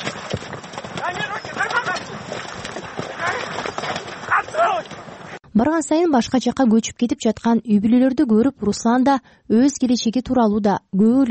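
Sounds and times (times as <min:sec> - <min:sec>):
horses galloping during a game in which riders fight over a goat carcass: 0:00.0 - 0:05.4
speech: 0:05.6 - 0:11.2.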